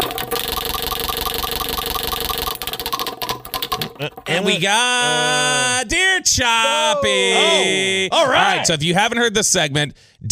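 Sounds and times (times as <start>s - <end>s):
prize wheel being spun: 0.0s - 4.6s
speech: 4.0s - 10.2s.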